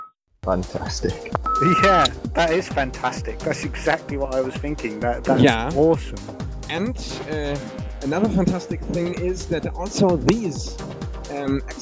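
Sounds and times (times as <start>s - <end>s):
speech: 0.6s - 11.8s
numbers-station transmission of electronic tone rounds: 1.4s - 2.7s
laughter: 1.6s - 5.6s.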